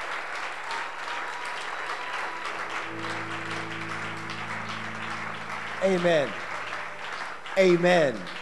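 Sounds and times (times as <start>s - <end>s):
large crowd applauding: 0.0s - 8.4s
low sustained organ or keyboard chord: 2.9s - 7.4s
speech: 5.8s - 6.5s, 7.6s - 8.4s.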